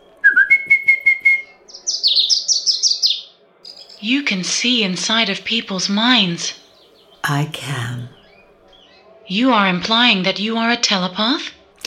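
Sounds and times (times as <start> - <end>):
caged birds in a club chirping: 0.0 - 9.2
speech: 4.0 - 6.6, 7.2 - 8.2, 9.3 - 11.6.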